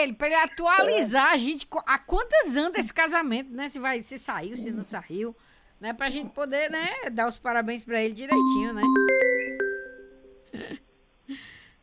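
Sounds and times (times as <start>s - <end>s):
speech: 0.0s - 9.3s, 11.3s - 11.5s
phone ringing with electronic chime: 8.3s - 10.4s.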